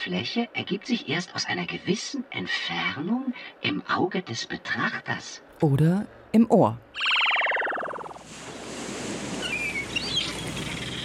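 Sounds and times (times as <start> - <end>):
speech: 0.1 - 7.2
sea waves: 8.1 - 11.0.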